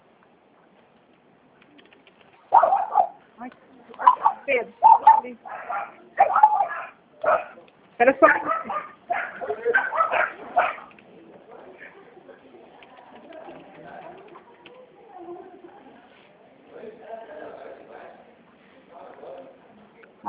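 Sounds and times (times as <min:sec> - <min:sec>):
dog barking in sharp yaps: 0:02.5 - 0:03.2, 0:04.0 - 0:07.6, 0:08.2 - 0:10.9
speech: 0:08.0 - 0:08.6.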